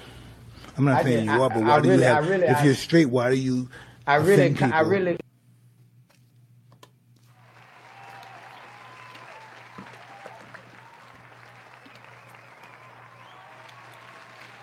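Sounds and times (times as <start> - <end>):
speech: 0.8 - 5.3
cheering: 7.4 - 14.6
large audience applause: 7.4 - 14.6.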